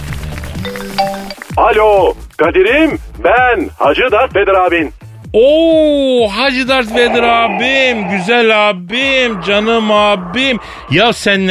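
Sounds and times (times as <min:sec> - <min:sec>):
mobile phone ringtone with bright melodic beeps: 0:00.7 - 0:01.6
speech: 0:00.8 - 0:11.4.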